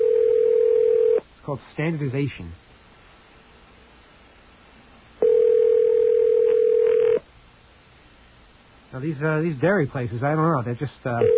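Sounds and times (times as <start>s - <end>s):
telephone ringback tone: 0.0s - 1.2s, 5.2s - 7.2s, 11.2s - 11.3s
faint hiss: 1.2s - 5.2s, 6.5s - 11.2s
speech: 1.5s - 2.6s, 8.9s - 11.3s.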